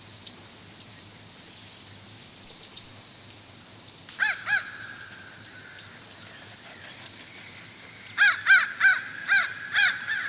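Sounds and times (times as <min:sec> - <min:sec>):
high insect hum: 0:00.0 - 0:10.2
fish crows calling to each other on the Outer Banks: 0:04.2 - 0:05.1, 0:08.2 - 0:10.2.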